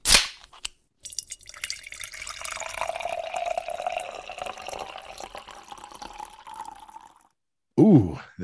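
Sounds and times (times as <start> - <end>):
beer can cracking open: 0.0 - 1.4
beer pouring into a glass: 1.0 - 7.3
speech: 7.8 - 8.4.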